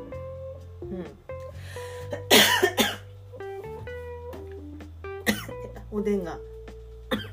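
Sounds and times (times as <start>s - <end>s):
speech: 0.9s - 2.2s, 5.9s - 6.5s
harsh cough: 2.2s - 3.0s, 5.3s - 5.5s, 7.1s - 7.3s.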